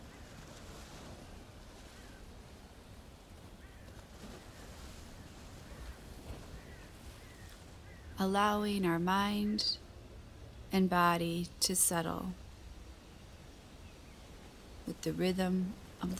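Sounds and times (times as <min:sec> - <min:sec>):
ocean waves washing in and drawing back: 0:00.0 - 0:16.1
speech: 0:08.2 - 0:09.8, 0:10.7 - 0:12.4, 0:15.0 - 0:16.1.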